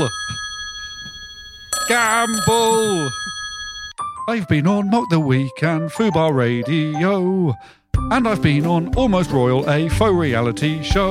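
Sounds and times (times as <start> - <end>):
person singing a ringtone-style call imitating a phone ringtone: 1.8 - 7.6
speech: 1.9 - 3.3, 4.3 - 11.0.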